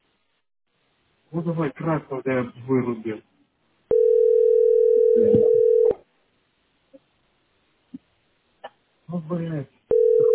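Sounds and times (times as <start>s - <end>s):
speech: 1.3s - 3.3s, 5.2s - 5.6s, 9.1s - 9.8s
telephone ringback tone of outgoing call: 3.9s - 6.0s, 9.9s - 10.3s.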